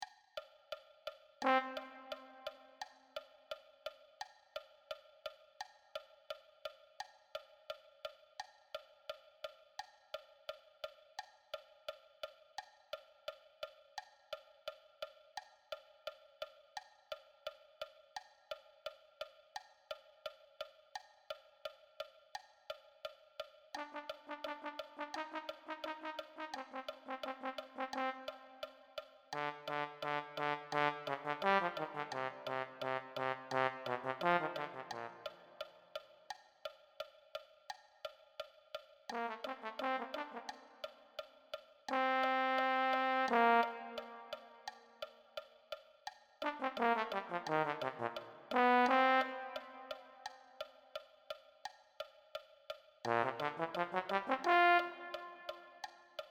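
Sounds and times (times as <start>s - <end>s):
low brass: 1.4s - 2.8s, 23.8s - 28.7s, 29.3s - 35.7s, 39.1s - 40.9s, 41.9s - 44.7s, 46.4s - 50.3s, 53.1s - 55.8s.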